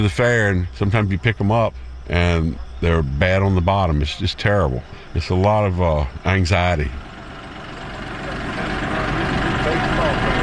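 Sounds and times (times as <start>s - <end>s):
faint indistinct voices: 0.0s - 7.0s, 7.6s - 10.4s
speech: 0.0s - 7.1s
tractor engine rumbling while maneuvering into a corral: 0.0s - 10.4s.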